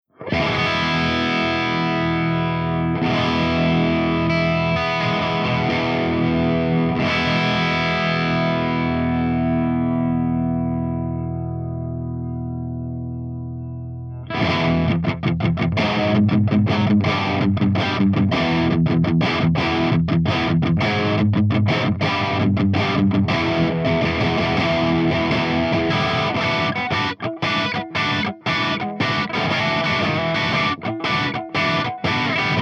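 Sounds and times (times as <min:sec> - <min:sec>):
ENGL SOV amplifier channel three drive through V30 speaker: 0:00.0 - 0:32.6.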